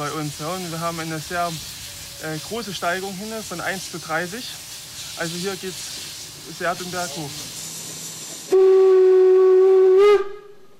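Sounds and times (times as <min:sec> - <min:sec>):
speech: 0:00.0 - 0:07.6
hissing steam from a narrow-gauge steam locomotive: 0:00.0 - 0:10.0
narrow-gauge steam locomotive whistle on a mountain railway climb: 0:08.5 - 0:10.7.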